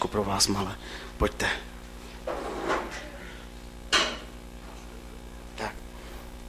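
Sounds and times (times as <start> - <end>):
speech: 0.2 - 2.4
chair scraping and shuffling across the floor: 2.2 - 3.0.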